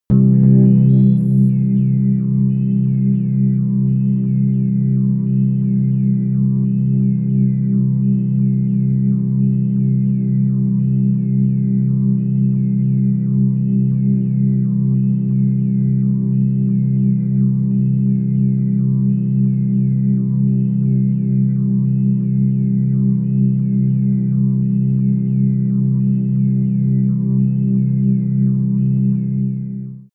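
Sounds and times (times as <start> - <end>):
soft organ chirps: 0.1 - 30.1.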